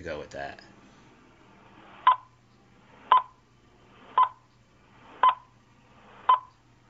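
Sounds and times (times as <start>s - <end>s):
speech: 0.0s - 0.7s
electronic countdown beeps: 3.1s - 3.4s, 4.2s - 4.4s, 6.3s - 6.6s.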